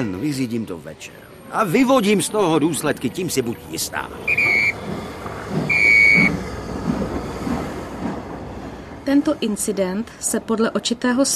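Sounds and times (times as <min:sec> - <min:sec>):
speech: 0:00.0 - 0:05.0, 0:09.0 - 0:11.3
steady low rumble of rolling train cars pulling away from a station: 0:00.0 - 0:11.3
train short shrill whistle blasts: 0:04.3 - 0:04.8, 0:05.6 - 0:06.4.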